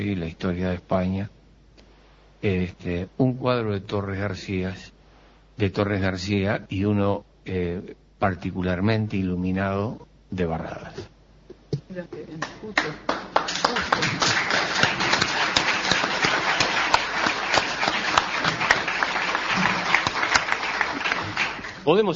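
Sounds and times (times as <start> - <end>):
speech: 0.0 - 1.4, 2.4 - 5.0, 5.6 - 11.1, 11.9 - 13.3, 13.9 - 14.6, 21.8 - 22.1
audience applause from a sizable crowd: 12.8 - 21.9.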